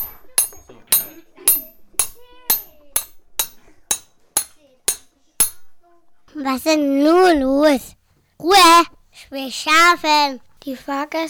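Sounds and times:
hammer striking metal rails while changing a locomotive wheel: 0.0s - 5.9s
speech: 6.4s - 11.2s.

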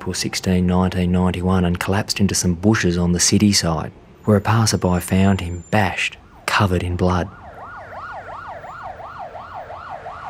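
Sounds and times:
speech: 0.0s - 7.4s
ambulance siren yelping on a street in Adelaide at night: 5.4s - 10.2s.

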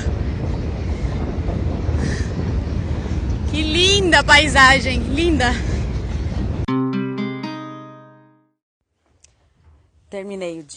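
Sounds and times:
huge train rumbling past: 0.0s - 6.7s
speech: 4.2s - 5.7s, 10.2s - 10.7s.

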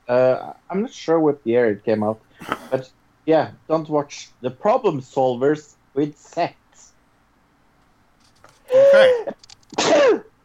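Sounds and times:
speech: 0.1s - 6.9s, 8.9s - 9.4s
person sneezing: 2.4s - 2.8s, 8.7s - 10.3s.

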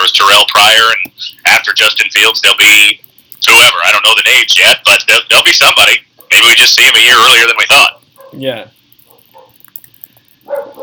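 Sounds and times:
speech: 0.2s - 8.8s
dogs barking: 8.1s - 8.4s, 9.0s - 9.6s, 10.4s - 10.8s.

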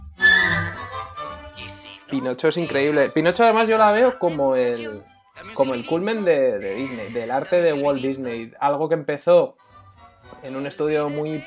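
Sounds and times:
person whistling a brief bright note: 0.0s - 1.1s
sustained musical backing of a song from an animated film: 0.0s - 8.5s, 9.2s - 11.4s
speech: 2.1s - 9.6s, 10.4s - 11.4s.

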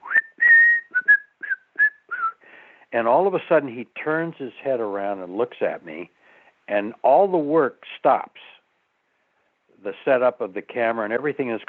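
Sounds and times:
person whistling a short cheerful tune: 0.0s - 2.4s
speech: 2.9s - 8.5s, 9.8s - 11.6s.

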